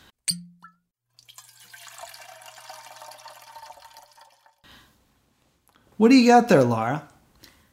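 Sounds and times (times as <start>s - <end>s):
sharp clink: 0.3s - 0.8s
stream of liquid splashing and gurgling while a drink is poured: 1.1s - 4.6s
speech: 6.0s - 7.1s.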